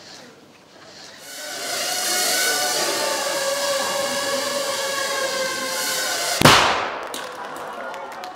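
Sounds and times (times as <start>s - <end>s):
steady high-pitched motorized whine: 1.2s - 7.1s
3-gram shaped explosive charge detonating: 5.7s - 7.3s.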